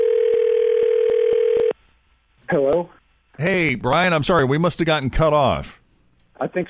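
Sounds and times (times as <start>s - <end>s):
telephone ringing tone while calling back a disconnected caller: 0.0s - 1.8s
speech: 2.5s - 5.8s, 6.4s - 6.6s.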